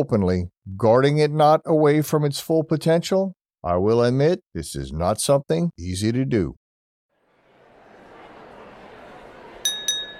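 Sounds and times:
speech: 0.0s - 6.6s
steady murmur of crowd noise: 7.3s - 10.1s
glasses clinking in a toast: 9.6s - 10.1s.

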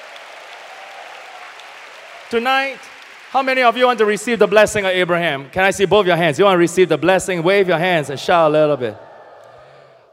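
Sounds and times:
large audience applause: 0.0s - 4.5s, 7.4s - 10.1s
speech: 2.3s - 9.0s.

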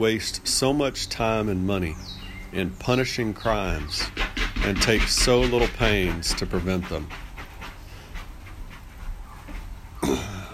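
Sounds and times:
speech: 0.0s - 7.2s
dog scratching an itch: 1.3s - 10.0s
dog panting: 3.4s - 10.0s.

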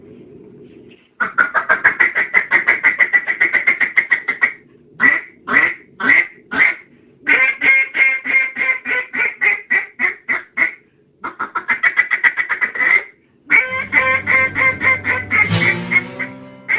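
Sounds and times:
duck call blown loud imitating mallard quacks: 1.2s - 16.7s
low drone: 13.7s - 16.7s.

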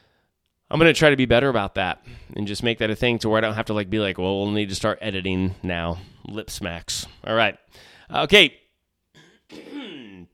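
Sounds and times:
speech: 0.7s - 8.6s
cough away from the microphone: 9.2s - 10.3s.

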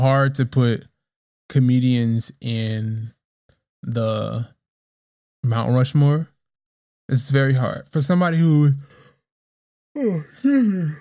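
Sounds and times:
speech: 0.0s - 0.9s, 1.5s - 3.2s, 3.8s - 4.6s, 5.4s - 6.3s, 7.1s - 8.9s, 10.0s - 10.9s
man yawning: 10.0s - 10.9s.

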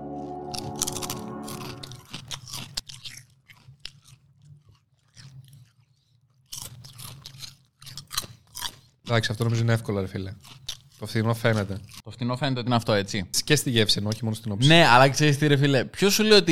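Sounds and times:
chewing crunchy barbecue-flavoured potato chips: 0.2s - 12.1s
speech: 9.1s - 16.4s.

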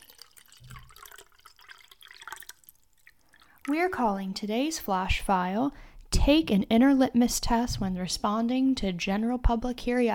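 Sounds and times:
water pouring into a glass: 0.0s - 4.2s
speech: 3.7s - 10.1s.

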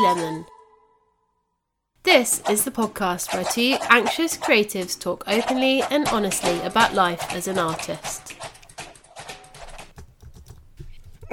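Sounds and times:
speech: 0.0s - 0.6s, 2.0s - 8.5s
typing on a computer keyboard: 5.4s - 11.3s.

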